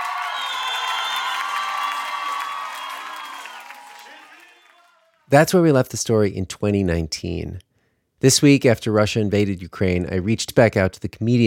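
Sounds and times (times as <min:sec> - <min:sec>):
large crowd cheering and screaming: 0:00.0 - 0:05.0
speech: 0:05.3 - 0:07.6, 0:08.2 - 0:11.4.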